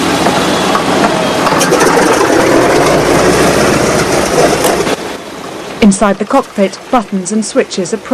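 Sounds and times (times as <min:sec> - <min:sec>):
B-17 bomber propeller engines starting up and roaring: 0:00.0 - 0:08.1
speech: 0:05.8 - 0:08.1.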